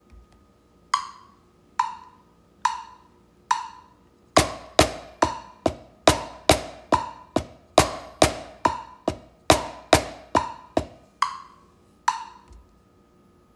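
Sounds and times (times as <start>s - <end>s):
drums played with a single hand: 4.4s - 11.4s.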